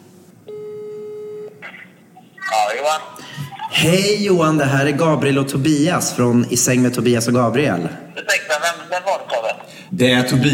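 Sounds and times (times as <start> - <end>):
long steady electronic telephone ringing tone: 0.5 - 1.6
speech: 2.7 - 8.4, 9.9 - 10.5.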